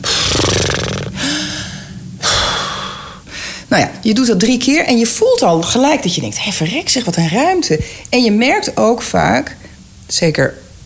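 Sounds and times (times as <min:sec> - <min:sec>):
deep exhaling breaths taken slowly while waiting at a traffic light: 0:00.0 - 0:03.8, 0:07.8 - 0:08.1
speech: 0:03.7 - 0:10.6.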